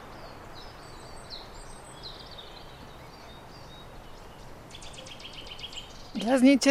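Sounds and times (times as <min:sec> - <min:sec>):
Eurasian wren singing in high rapid twittering phrases: 0:00.0 - 0:06.7
steady outdoor hiss: 0:00.0 - 0:06.7
speech: 0:06.2 - 0:06.7.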